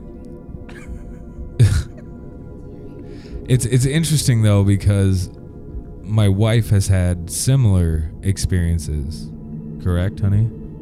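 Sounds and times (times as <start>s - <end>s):
low hum: 0.0s - 10.8s
throat clearing: 0.7s - 2.1s
faint breathy noises: 2.9s - 3.5s
speech: 3.5s - 5.4s, 6.1s - 10.6s.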